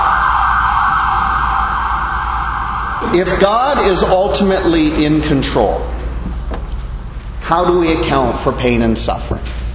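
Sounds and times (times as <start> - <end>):
ambulance siren going by: 0.0 - 5.2
speech: 3.1 - 6.0, 7.5 - 9.6.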